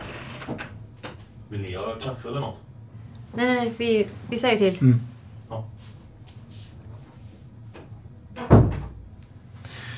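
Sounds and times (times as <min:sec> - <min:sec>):
speech: 0:01.5 - 0:02.7, 0:03.3 - 0:06.0
soft brushing rustle: 0:03.0 - 0:07.5
door thudding shut: 0:08.4 - 0:09.1.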